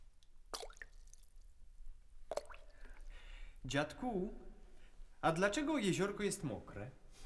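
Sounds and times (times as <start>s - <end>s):
liquid plips of drops falling into still water: 0.0s - 3.2s
speech: 3.6s - 4.5s, 5.2s - 7.2s.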